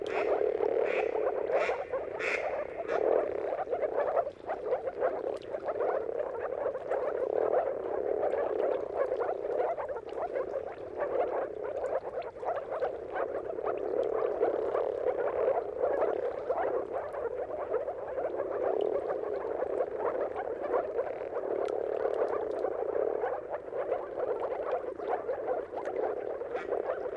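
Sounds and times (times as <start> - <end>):
chorus of moor frogs giving mating calls at sunrise: 0.0 - 27.1.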